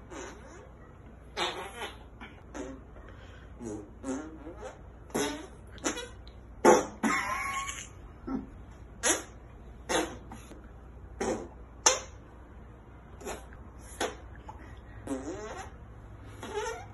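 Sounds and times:
armpit fart noises in an armpit fart contest: 1.3 - 2.9, 3.6 - 10.5, 11.1 - 12.0, 13.2 - 14.3, 15.0 - 16.9.

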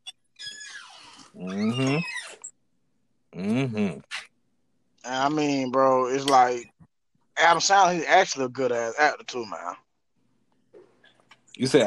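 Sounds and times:
squeaky door creaking open: 0.0 - 2.6
speech: 1.4 - 2.1, 3.4 - 4.0, 5.2 - 6.7, 7.4 - 9.8, 11.6 - 11.8.

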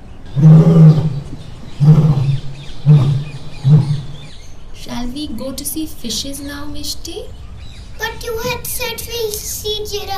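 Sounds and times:
lion roaring at a zoo: 0.3 - 4.4
speech: 0.4 - 1.0, 5.4 - 7.4, 8.0 - 10.1.

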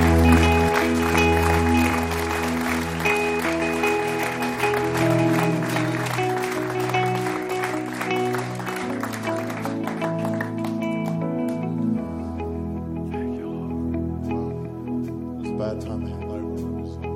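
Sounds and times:
audience clapping during worship: 0.0 - 12.0
sustained keyboard or organ chords: 0.0 - 17.1.

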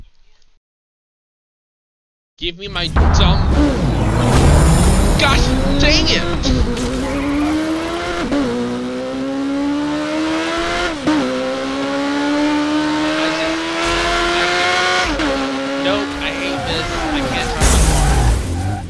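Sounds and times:
speech: 2.4 - 4.4, 5.2 - 6.9
loud video game car crash: 2.7 - 7.9, 17.4 - 18.8
video game car engine droning through gear shifts: 2.7 - 18.8.

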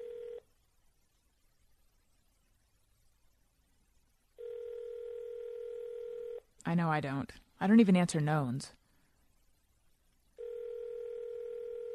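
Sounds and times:
buzzing telephone tone of an outgoing call from a blocked number: 0.0 - 0.4, 4.4 - 6.4, 10.4 - 11.9
speech: 6.6 - 8.8.

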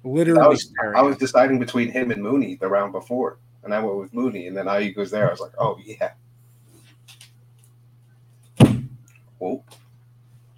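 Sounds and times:
speech: 0.0 - 6.2, 9.4 - 9.8
steady low hum: 0.0 - 10.5
detached chair top sliding off its base with a heavy clunk: 8.6 - 9.0.

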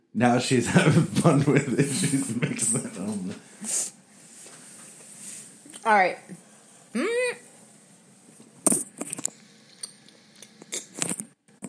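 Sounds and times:
speech: 0.2 - 4.0, 5.8 - 7.2
laughter: 0.5 - 3.4
person humming: 1.5 - 3.1, 7.0 - 7.4
person chewing and crunching hard candy: 10.4 - 11.6.

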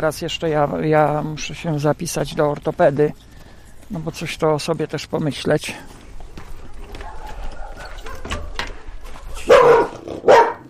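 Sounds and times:
speech: 0.0 - 3.3, 3.9 - 6.0
quiet noise: 0.0 - 10.6
dog barking: 6.6 - 10.6.

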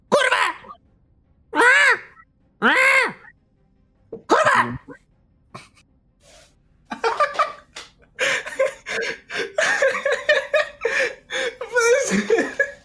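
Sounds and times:
parrot squawking on a man's shoulder: 1.6 - 3.3
laughter: 6.9 - 12.8.

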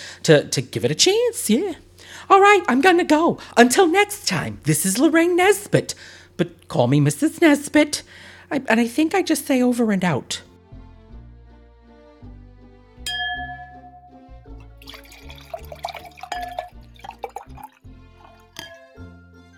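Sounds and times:
speech: 0.2 - 10.5
soft steady musical backdrop: 8.6 - 19.5
light glass clinks: 13.1 - 17.7, 18.3 - 19.0
sherry pouring into a glass: 13.4 - 19.0.

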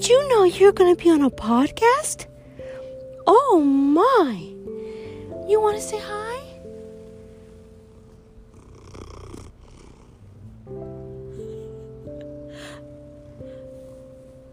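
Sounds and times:
speech: 0.0 - 2.3, 3.3 - 4.5, 5.5 - 6.2
male cat purring: 5.8 - 14.5.

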